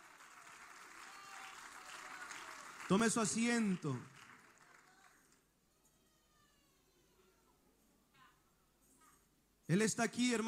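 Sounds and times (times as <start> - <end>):
audience clapping in praise: 0.0 - 5.5
speech: 2.9 - 4.2, 9.7 - 10.4.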